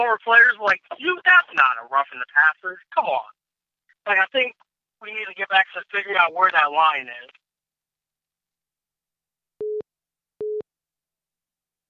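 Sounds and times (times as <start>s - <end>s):
speech: 0.0s - 3.4s, 4.0s - 7.4s
phone busy signal beeps after a dropped call: 9.6s - 9.8s, 10.4s - 10.6s.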